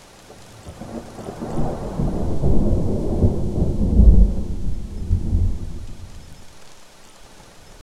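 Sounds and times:
crashing ocean waves howling: 0.9s - 6.6s.

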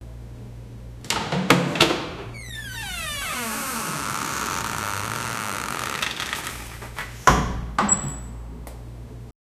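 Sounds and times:
door opening: 1.1s - 8.3s.

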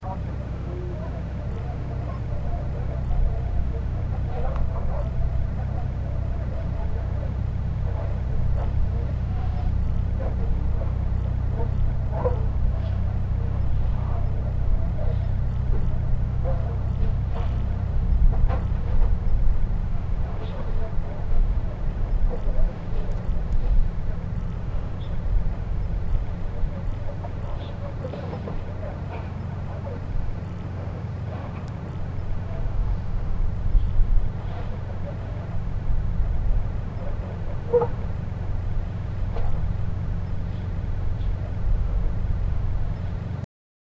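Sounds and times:
ambience on an old boat: 0.0s - 43.4s.

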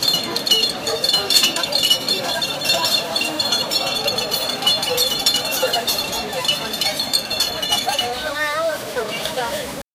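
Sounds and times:
busy outdoor produce market: 0.0s - 9.9s.

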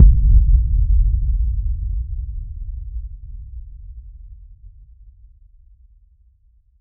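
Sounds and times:
hard hit deep thud: 0.0s - 1.0s.

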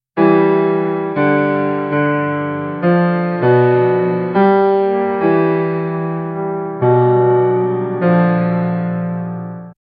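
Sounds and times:
historical-style classical piano piece: 0.2s - 9.8s.

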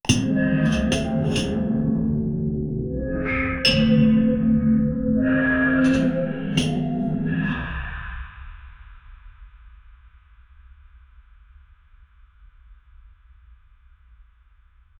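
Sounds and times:
ambient gothic music: 0.0s - 8.4s.

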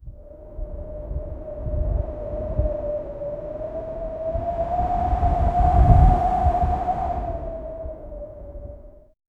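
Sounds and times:
loud gale wind blowing: 0.0s - 9.1s.

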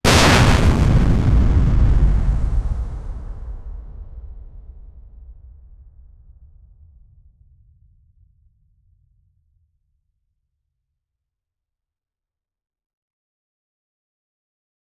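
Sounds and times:
gritty outdoor explosion: 0.0s - 5.3s.

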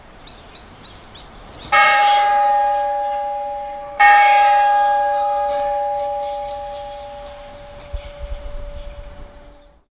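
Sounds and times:
church tower bell striking: 1.7s - 9.8s.

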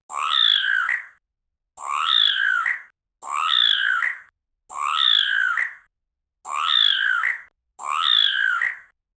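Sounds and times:
angry upset frog: 0.1s - 1.2s, 1.8s - 5.8s, 6.4s - 8.9s.

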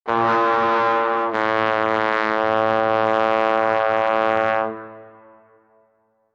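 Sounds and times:
trumpet: 0.0s - 6.0s.

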